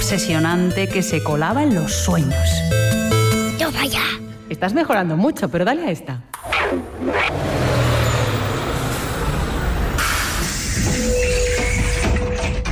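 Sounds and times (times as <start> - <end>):
speech: 0.1 - 2.9, 3.7 - 7.3
large school bus engine rumbling: 7.0 - 12.0.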